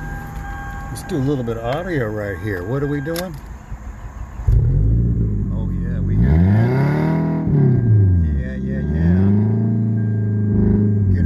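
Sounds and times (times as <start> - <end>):
speech: 0.9 - 3.5
car engine revving: 4.1 - 11.2.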